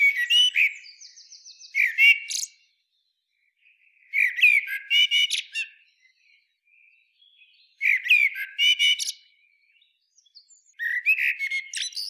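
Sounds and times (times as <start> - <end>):
Eurasian blackbird Turdus merula song: 0.0 - 12.0.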